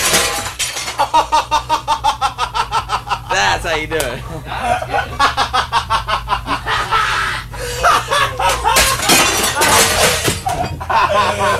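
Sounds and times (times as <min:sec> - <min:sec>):
expensive glass shattering in a loud crash: 0:00.0 - 0:01.1, 0:08.5 - 0:10.8
laughter: 0:01.0 - 0:11.5
speech: 0:03.6 - 0:05.6
glass shards skittering and settling with bright tinkling: 0:08.5 - 0:10.8.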